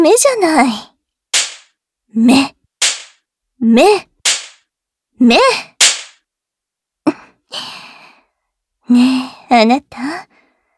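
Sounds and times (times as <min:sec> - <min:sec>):
speech: 0:00.0 - 0:00.9, 0:02.1 - 0:02.9, 0:03.6 - 0:04.4, 0:05.2 - 0:05.7, 0:08.9 - 0:10.3
sharp slap: 0:01.4 - 0:01.7, 0:02.8 - 0:03.2, 0:04.2 - 0:04.6, 0:05.8 - 0:06.2.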